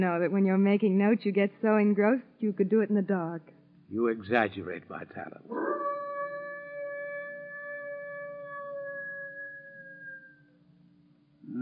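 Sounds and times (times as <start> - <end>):
speech: 0.0 - 5.9
wolf howling: 5.5 - 10.5.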